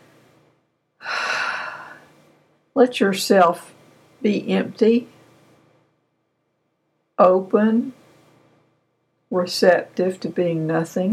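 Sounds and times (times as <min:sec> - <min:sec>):
deep breath inhale: 0:01.0 - 0:02.2
speech: 0:02.8 - 0:05.2, 0:07.2 - 0:08.0, 0:09.3 - 0:11.1.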